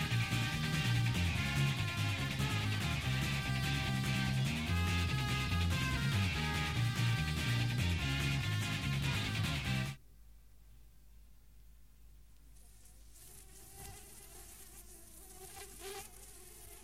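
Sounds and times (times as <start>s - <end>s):
housefly on a wall buzzing: 0.0s - 9.9s, 12.6s - 16.8s.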